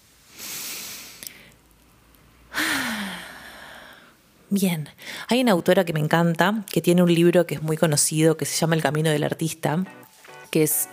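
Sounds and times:
deep breathing during a calm breathing exercise: 0:00.3 - 0:01.6, 0:02.5 - 0:04.2
speech: 0:04.5 - 0:10.9.

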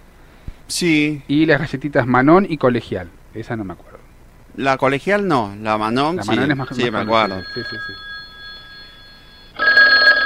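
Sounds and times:
speech: 0:00.7 - 0:04.0, 0:04.6 - 0:08.1
telephone ringing with an electronic tone: 0:06.2 - 0:10.2.

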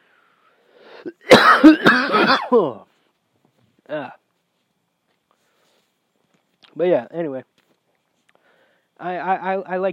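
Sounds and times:
harsh rasping coughs from a dry throat while taking a vape hit: 0:01.0 - 0:02.7
speech: 0:01.0 - 0:02.9, 0:06.8 - 0:07.5, 0:09.0 - 0:09.9.

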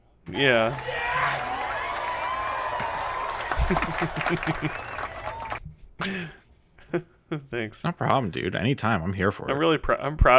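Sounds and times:
speech: 0:00.3 - 0:01.0, 0:03.7 - 0:04.9, 0:06.0 - 0:10.3
canned applause sound effect played from a button: 0:00.3 - 0:05.6
cheering and whoops: 0:00.7 - 0:05.6
laughter: 0:03.3 - 0:07.5.

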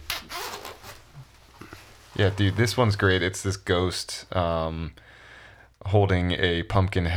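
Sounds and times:
clothing zipper being unzipped: 0:00.0 - 0:02.8
fabric rustling: 0:00.0 - 0:03.8
speech: 0:02.2 - 0:05.2, 0:05.8 - 0:07.1.

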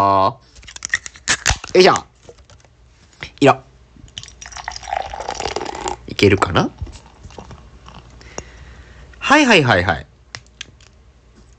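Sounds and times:
speech: 0:00.0 - 0:00.6, 0:01.8 - 0:02.1, 0:03.4 - 0:03.7, 0:06.2 - 0:06.8, 0:09.3 - 0:10.1
Black Label beer pouring into a mug: 0:04.2 - 0:08.0.

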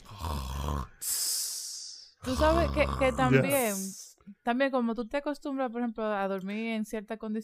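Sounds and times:
voice imitating loud snoring: 0:00.0 - 0:04.1
speech: 0:02.3 - 0:07.4.

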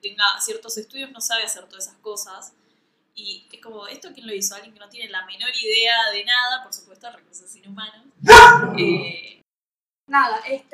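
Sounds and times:
speech: 0:00.0 - 0:02.6, 0:03.2 - 0:09.4, 0:10.1 - 0:10.7
small female dog barking: 0:08.2 - 0:08.8
small female dog high-pitched whine: 0:08.2 - 0:09.1.

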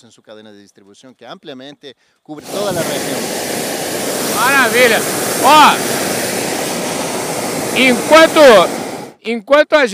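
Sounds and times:
speech: 0:00.0 - 0:06.2, 0:07.8 - 0:09.9
hot air balloon burner roaring: 0:02.4 - 0:09.2.

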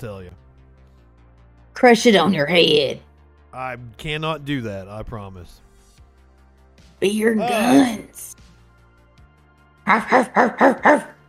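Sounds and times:
speech: 0:00.0 - 0:00.5, 0:01.8 - 0:03.0, 0:03.6 - 0:05.6, 0:07.0 - 0:08.4, 0:09.9 - 0:11.2
dog barking: 0:09.9 - 0:11.2.

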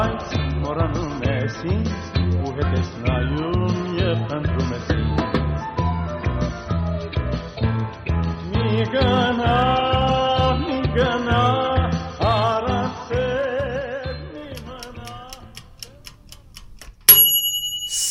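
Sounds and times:
music: 0:00.0 - 0:15.9
speech: 0:02.7 - 0:04.5
stove timer metallic bell ringing: 0:17.1 - 0:18.0.

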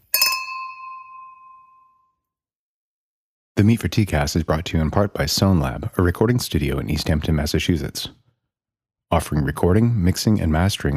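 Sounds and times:
glasses clinking: 0:00.0 - 0:02.0
speech: 0:03.6 - 0:08.2, 0:09.1 - 0:10.9.

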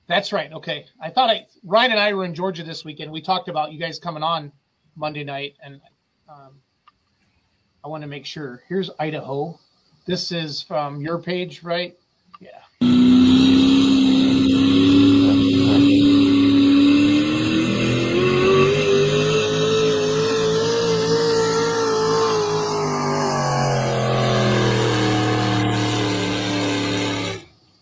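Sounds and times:
speech: 0:00.1 - 0:06.7, 0:07.8 - 0:13.0
race car engine revving through a slightly missed gear shift: 0:12.8 - 0:27.5.

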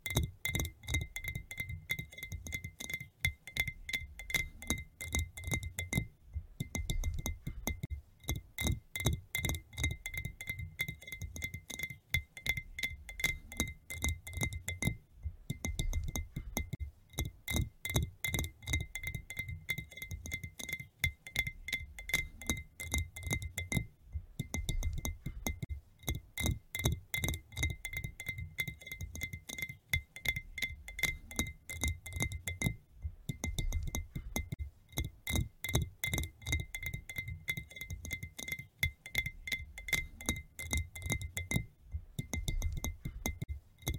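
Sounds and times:
gentle tapping on various glass surfaces: 0:00.0 - 0:43.9
soft low rumble: 0:06.2 - 0:06.6.

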